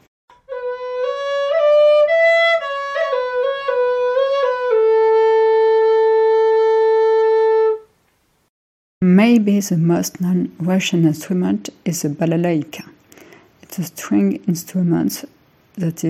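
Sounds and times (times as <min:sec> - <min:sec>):
Russian svirel wooden flute made of ash wood playing: 0:00.3 - 0:07.9
speech: 0:09.5 - 0:12.9, 0:13.8 - 0:16.0.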